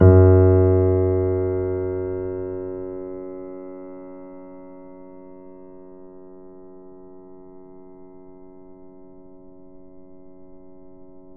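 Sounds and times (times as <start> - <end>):
grand piano note F sharp 1 played mezzo forte: 0.0 - 4.8.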